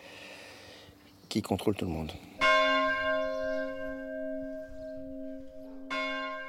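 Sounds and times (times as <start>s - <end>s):
speech: 1.3s - 2.3s
church bells ringing: 2.4s - 6.4s.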